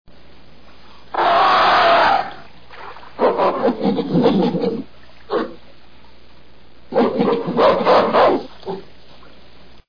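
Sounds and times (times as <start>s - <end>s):
gorilla: 1.1s - 2.5s, 3.2s - 5.6s, 6.9s - 8.9s.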